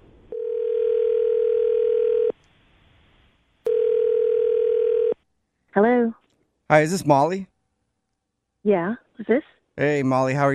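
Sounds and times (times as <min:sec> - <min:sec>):
telephone ringing tone on the line: 0:00.3 - 0:02.4, 0:03.7 - 0:05.2
speech: 0:05.8 - 0:07.5, 0:08.6 - 0:10.5.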